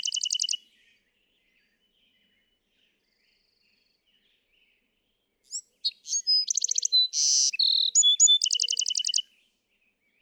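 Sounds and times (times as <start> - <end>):
Bewick's wren singing: 0.0 - 0.6, 5.5 - 9.2.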